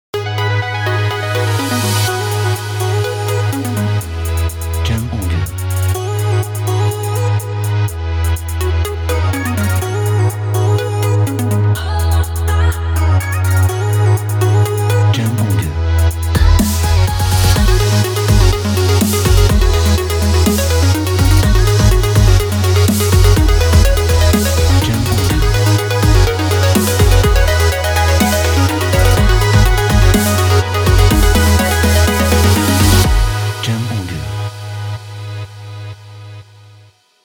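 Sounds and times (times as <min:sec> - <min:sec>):
energetic corporate pop music: 0:00.1 - 0:35.5.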